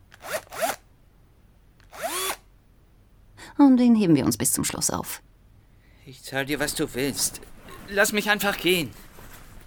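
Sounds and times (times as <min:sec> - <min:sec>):
electric drill motor whirring: 0:00.0 - 0:00.8, 0:01.8 - 0:02.4
speech: 0:03.6 - 0:05.3, 0:06.1 - 0:09.1.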